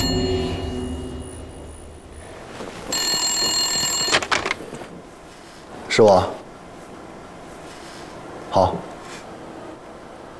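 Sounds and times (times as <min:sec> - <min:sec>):
telephone ringing with a bright metallic bell tone: 0:00.0 - 0:04.8
speech: 0:06.0 - 0:06.4, 0:08.6 - 0:08.9.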